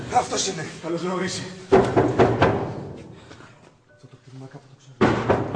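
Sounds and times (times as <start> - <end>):
speech: 0.2 - 2.3
man knocking heavily on an open wooden door: 1.7 - 3.0, 5.0 - 5.5.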